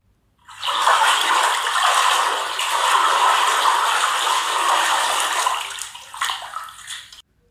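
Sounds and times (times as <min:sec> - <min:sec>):
water rushing and churning in a basin: 0:00.4 - 0:07.2.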